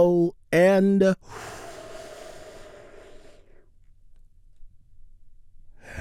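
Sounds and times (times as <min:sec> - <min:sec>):
speech: 0:00.0 - 0:01.6
deep breath in and out: 0:01.2 - 0:03.8, 0:05.7 - 0:05.9.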